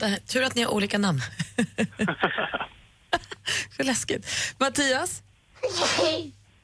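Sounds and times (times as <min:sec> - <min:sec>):
speech: 0:00.0 - 0:06.4
laughter: 0:01.6 - 0:02.7
person sneezing: 0:05.6 - 0:06.3.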